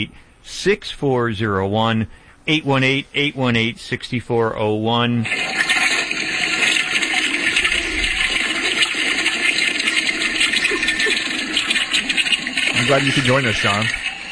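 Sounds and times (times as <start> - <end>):
speech: 0.0 - 5.8, 12.8 - 14.1
toilet flushing: 5.2 - 14.3.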